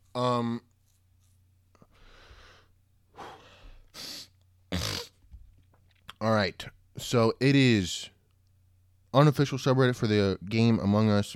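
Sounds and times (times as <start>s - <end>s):
speech: 0.2s - 0.7s, 6.2s - 8.1s, 9.2s - 11.3s
person blowing nose: 3.2s - 5.2s.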